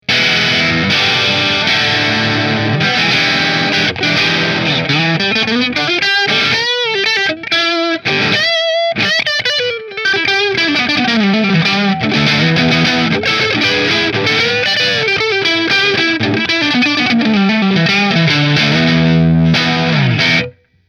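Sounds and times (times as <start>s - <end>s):
New Orleans Guitars Voodoo Custom Quilt Top guitar through Marshall: 0.0s - 20.8s.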